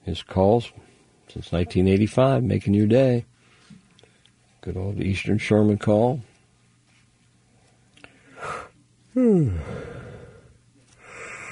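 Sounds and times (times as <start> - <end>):
speech: 0.1 - 3.3, 4.6 - 6.3, 9.2 - 9.9
breathing: 3.4 - 4.4, 7.7 - 8.7, 9.5 - 11.4
person yawning while waiting for a phone call to connect: 8.4 - 11.4.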